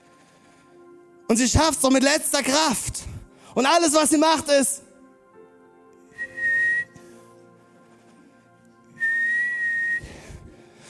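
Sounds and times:
speech: 1.3 - 4.8
woman imitating rescue whistle blasts: 6.2 - 6.9, 9.0 - 10.0.

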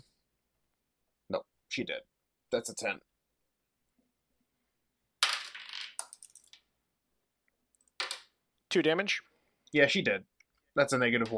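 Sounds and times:
speech: 1.3 - 3.1, 8.7 - 11.3
dice rolling across a hard table surface: 5.2 - 6.7, 7.8 - 8.4.

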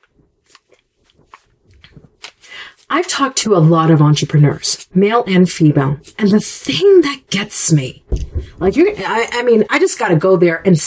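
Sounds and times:
person sipping water: 0.0 - 2.9
speech: 3.0 - 8.0, 8.6 - 10.8.

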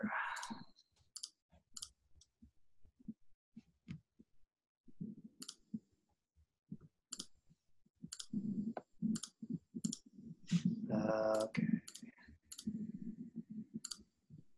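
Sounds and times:
computer mouse clicks while searching for a file: 0.4 - 2.3, 5.4 - 5.8, 7.1 - 7.3, 8.0 - 10.1, 11.3 - 14.1
brief murmured voice: 10.5 - 11.9
speech: 10.9 - 11.8.

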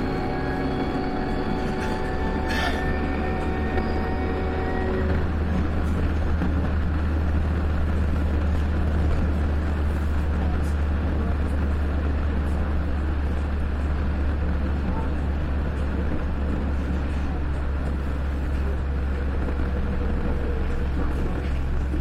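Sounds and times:
sustained tones: 0.0 - 5.8
underground train rumbling and humming in Hamburg heard from inside the carriage: 0.0 - 22.0.

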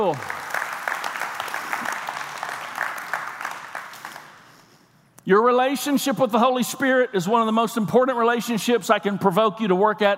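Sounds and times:
speech: 0.0 - 0.4, 5.3 - 10.1
audience clapping: 0.0 - 4.8.

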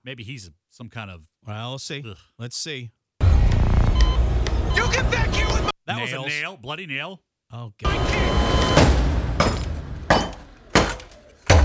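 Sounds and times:
speech: 0.0 - 9.0
smashing something with a lamp: 7.9 - 11.6.

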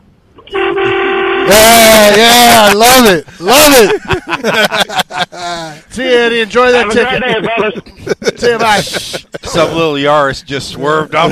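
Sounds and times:
speech: 0.4 - 0.9, 1.5 - 11.2
single loud car horn blast: 0.4 - 3.0
laughter: 1.8 - 5.9, 6.7 - 10.0.

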